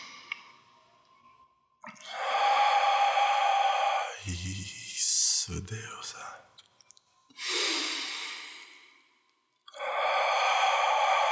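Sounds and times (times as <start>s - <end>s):
slow deep breathing in through the nose and out through the mouth: 2.1s - 6.5s, 7.4s - 11.3s
speech: 5.5s - 6.4s.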